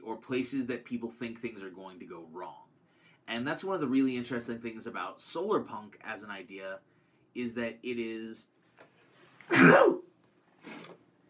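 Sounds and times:
speech: 0.2s - 8.5s, 9.5s - 10.0s
loud sneeze: 9.5s - 11.0s
soft breathy sniff or exhale: 10.6s - 11.0s.

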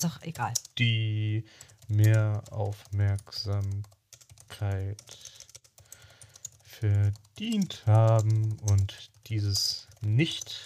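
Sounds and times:
speech: 0.0s - 5.4s, 6.8s - 10.6s
rapid typing on a computer keyboard: 0.3s - 1.0s, 1.6s - 10.6s.

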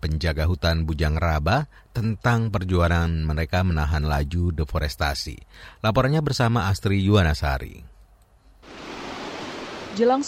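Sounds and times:
speech: 0.1s - 7.9s, 10.0s - 10.2s
river water rushing over rocks: 8.6s - 10.2s.

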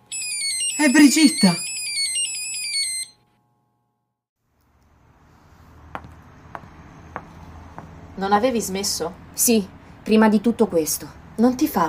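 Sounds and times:
mobile phone on a desk playing a melodic ringtone: 0.1s - 3.3s
speech: 0.8s - 1.7s, 8.2s - 11.8s.

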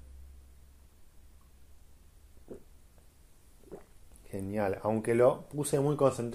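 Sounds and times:
faint steady hiss: 0.0s - 6.3s
slurping sips of hot matcha tea: 2.4s - 2.7s, 3.6s - 4.3s
speech: 4.4s - 6.3s.

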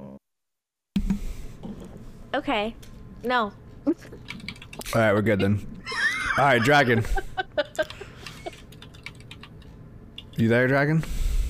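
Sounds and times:
speech: 1.6s - 7.3s, 10.4s - 11.2s
typing on a computer keyboard: 4.2s - 4.9s, 7.8s - 10.4s
laughter: 5.0s - 8.7s.

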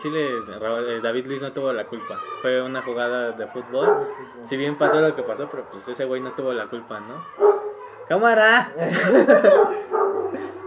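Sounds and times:
speech: 0.0s - 10.6s
dogs barking, yelping and snarling in a scuffle: 3.3s - 6.4s, 7.2s - 8.1s, 9.0s - 10.6s
laughter: 8.8s - 10.6s.

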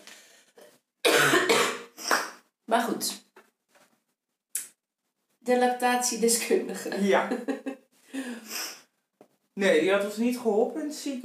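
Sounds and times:
harsh raspy coughing fit: 1.1s - 2.0s
speech: 2.7s - 3.2s, 5.5s - 7.7s, 9.6s - 11.2s
laughter: 6.9s - 7.8s.

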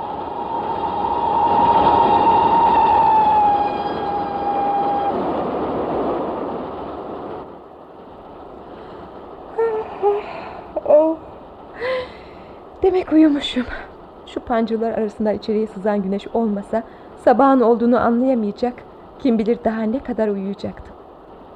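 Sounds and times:
steady high-pitched train whine: 0.0s - 5.5s
loud train clattering on rails: 0.0s - 21.5s
speech: 12.9s - 13.8s, 14.4s - 20.9s.

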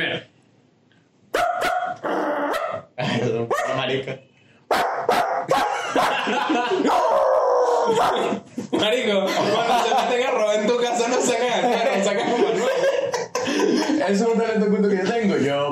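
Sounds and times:
person imitating dog barking and howling in a contest: 1.4s - 2.9s, 6.9s - 8.4s
speech: 3.2s - 5.2s, 6.0s - 15.7s
laughter: 5.5s - 14.4s.

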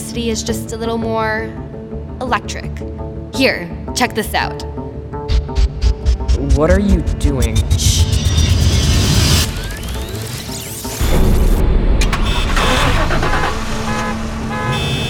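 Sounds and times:
speech: 0.2s - 4.8s, 6.4s - 8.1s
many car engines starting in a parking garage: 6.4s - 15.0s
car horn toot: 12.1s - 13.1s, 13.8s - 15.0s.

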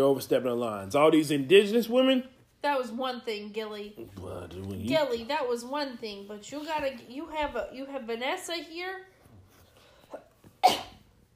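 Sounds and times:
speech: 0.0s - 9.1s, 10.1s - 10.9s
single sharp explosive cough: 10.2s - 11.1s.

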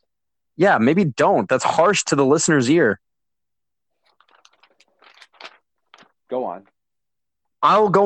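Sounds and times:
speech: 0.6s - 3.1s, 6.3s - 6.7s, 7.6s - 8.0s
paper rustling: 4.0s - 6.4s.

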